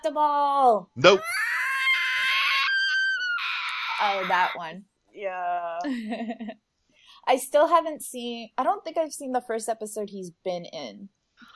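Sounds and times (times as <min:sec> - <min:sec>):
speech: 0:00.0 - 0:01.6, 0:04.0 - 0:11.5
person imitating a shrill cartoon character scream: 0:01.0 - 0:04.7.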